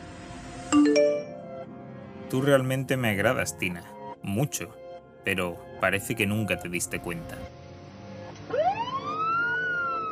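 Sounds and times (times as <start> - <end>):
speech: 2.3 - 7.6
police car siren wailing: 8.3 - 10.1.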